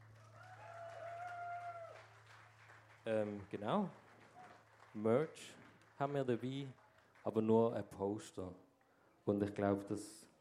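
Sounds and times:
faint crowd clapping: 0.0 - 8.0
speech: 3.1 - 4.0, 5.0 - 8.6, 9.3 - 10.3.

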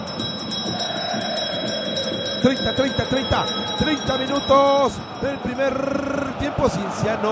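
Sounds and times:
bell ringing with shimmering metallic tones: 0.0 - 6.5
speech: 2.4 - 7.2.

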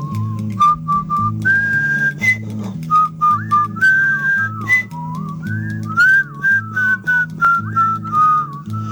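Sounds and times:
man whistling a lively folk tune while working: 0.0 - 8.8
steady rhythmic low instrumental accompaniment: 0.0 - 8.8.

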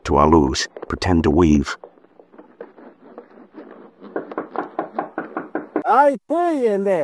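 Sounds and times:
speech: 0.1 - 1.9, 5.9 - 7.0
knocking on a door: 4.0 - 5.9.

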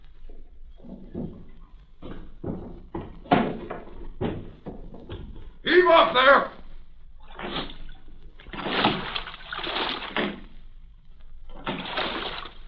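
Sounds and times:
speech: 5.8 - 6.5
oars of a small rowboat splashing through water in a harbor: 7.2 - 10.8, 11.4 - 12.6.

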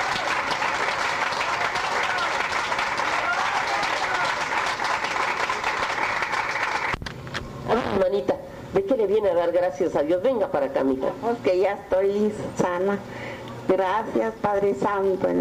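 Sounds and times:
audience applause: 0.0 - 7.0
speech: 8.1 - 15.4.

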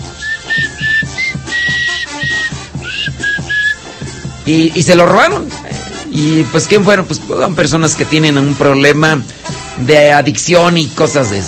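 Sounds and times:
person whistling a song melody imitating a parrot: 0.0 - 4.2
low rhythmic music: 0.0 - 11.4
speech: 4.5 - 5.6, 6.2 - 11.4.

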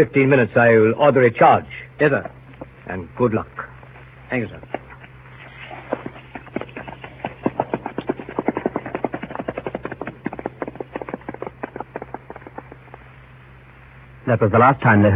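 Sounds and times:
speech: 0.0 - 3.7, 4.3 - 4.8, 14.3 - 15.1
low constant hum: 0.0 - 15.1
ridden horse hooves clip-clopping: 2.0 - 13.9.

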